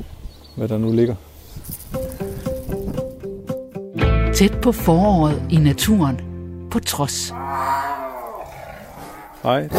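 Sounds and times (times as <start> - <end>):
speech: 0.6 - 1.3, 4.4 - 7.4, 9.4 - 9.7
lion roaring in an animal park enclosure: 7.3 - 9.7.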